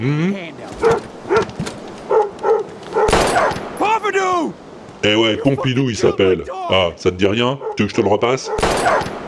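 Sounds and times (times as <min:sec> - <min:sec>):
speech: 0:00.0 - 0:01.0, 0:05.0 - 0:09.1
dog barking: 0:00.8 - 0:03.2, 0:07.6 - 0:08.6.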